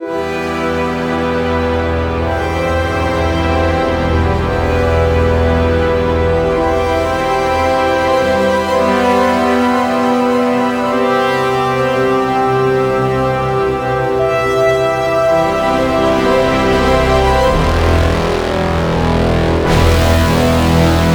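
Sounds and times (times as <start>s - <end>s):
epic brass ensemble music: 0.0s - 21.1s.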